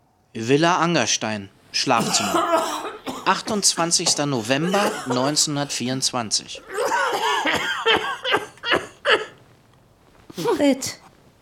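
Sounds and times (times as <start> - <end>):
speech: 0.4 - 7.7, 10.6 - 11.0
man coughing in a bedroom: 1.9 - 5.8, 6.6 - 9.4.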